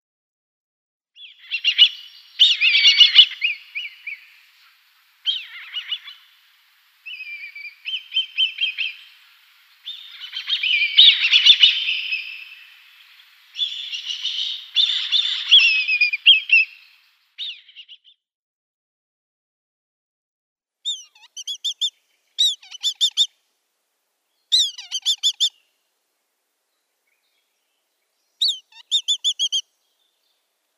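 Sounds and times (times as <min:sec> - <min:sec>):
Black Kite nestling calling: 0:01.2 - 0:06.4, 0:07.0 - 0:18.1, 0:20.8 - 0:23.3, 0:24.5 - 0:25.6, 0:28.4 - 0:29.7.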